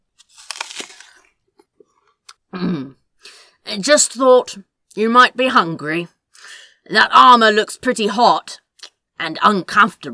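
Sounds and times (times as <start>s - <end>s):
loud chewing of a crisp apple: 0.2s - 1.3s
crisp sweet apple crunching: 0.2s - 1.4s
wet chewing clicks: 0.4s - 1.2s
speech: 3.7s - 6.2s, 6.9s - 8.6s, 9.2s - 10.1s.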